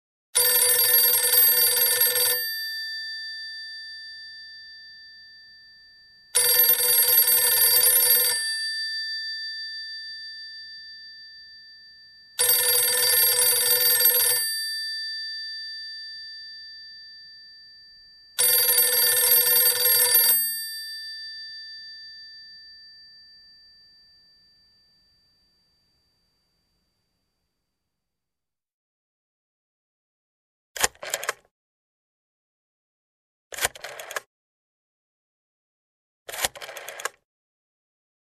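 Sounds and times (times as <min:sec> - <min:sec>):
old telephone ringing: 0:00.4 - 0:23.5, 0:33.8 - 0:34.2, 0:36.4 - 0:37.1
rotary dial dialing a number: 0:30.8 - 0:31.5, 0:33.6 - 0:34.3, 0:36.3 - 0:37.2.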